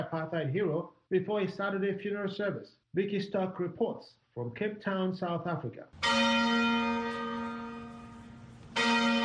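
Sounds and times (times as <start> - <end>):
speech: 0.0 - 7.3
large cathedral bell tolling: 6.0 - 9.2.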